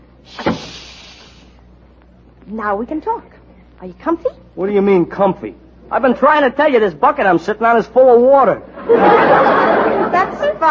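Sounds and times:
soft brushing hiss: 0.2 - 2.6
door being closed: 0.3 - 0.8
speech: 2.5 - 9.7
laughter: 8.7 - 10.6.

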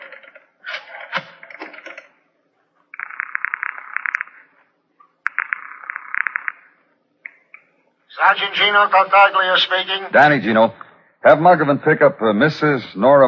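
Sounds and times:
telephone buzzing rings: 3.0 - 4.6, 5.3 - 6.8
speech: 8.2 - 13.2.

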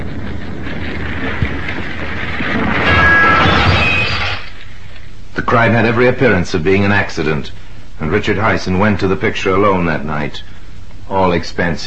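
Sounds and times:
loud sustained rumbling roar: 0.0 - 4.4
burning car crashing into a gravel pit: 0.0 - 4.7
crunching and clattering noise: 0.0 - 5.1
speech: 5.5 - 10.5, 11.1 - 11.8.

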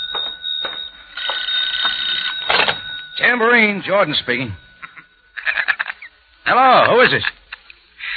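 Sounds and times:
telephone ringing with electronic trill: 0.0 - 6.2
speech: 3.2 - 4.6, 6.4 - 7.4.

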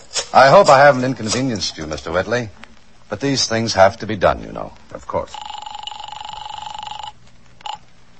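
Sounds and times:
faint hum: 0.0 - 8.1
speech: 0.4 - 5.5
old-style telephone bell ringing: 5.3 - 7.8.

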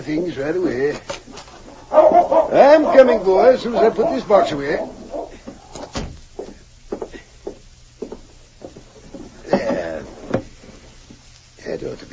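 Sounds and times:
speech: 0.0 - 1.2, 1.9 - 5.0
door creaking: 3.4 - 6.2.

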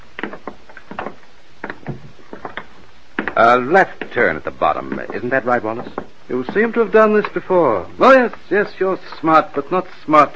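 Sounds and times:
wooden door opening with clunks and creaks: 0.2 - 6.7
speech: 3.4 - 10.3.

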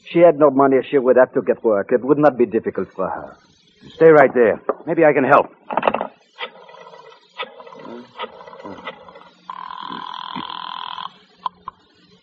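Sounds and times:
speech: 0.1 - 5.9
short clattering knocks: 5.7 - 6.5
old-fashioned telephone ringing: 6.4 - 11.7.

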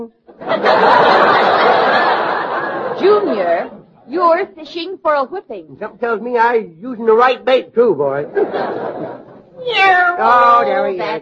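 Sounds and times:
speech: 0.0 - 1.3, 3.0 - 11.2
laughter: 0.3 - 3.8, 8.1 - 9.5
cat meowing: 9.6 - 10.8.

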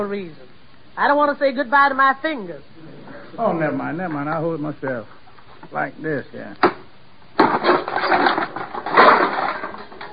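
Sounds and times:
speech: 0.0 - 6.8
debris clattering: 6.6 - 10.1
wood splintering and rattling: 6.6 - 10.1
hammer smashing a wooden birdhouse made of green lumber: 7.4 - 10.1.

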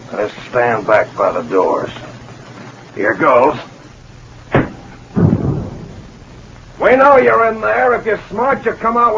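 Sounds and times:
speech: 0.1 - 2.0, 3.0 - 3.7, 6.9 - 9.1
rumbling burst of a tear gas bomb: 4.0 - 9.1
heavy thud of a tear gas bomb tossed in through a door: 4.5 - 6.6.

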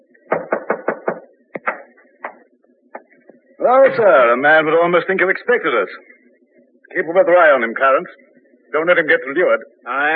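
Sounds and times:
knocking on a door: 0.3 - 2.4
speech: 3.7 - 6.1, 6.9 - 10.1.

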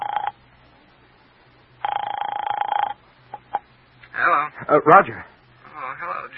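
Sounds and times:
telephone ringback tone heard through the line: 0.0 - 0.4, 1.8 - 3.6
speech: 4.7 - 5.3.

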